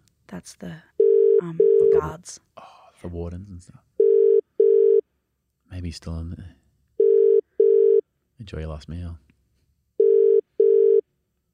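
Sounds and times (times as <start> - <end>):
speech: 0.3 - 3.9, 5.7 - 6.6, 8.5 - 9.2
telephone ringing for an incoming call from a county jail: 4.0 - 5.0, 7.0 - 8.0, 10.0 - 11.0.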